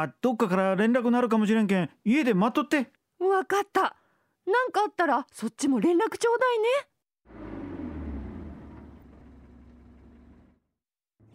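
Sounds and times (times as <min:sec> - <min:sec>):
speech: 0:00.0 - 0:07.5
police car engine idling outside house: 0:07.3 - 0:10.6.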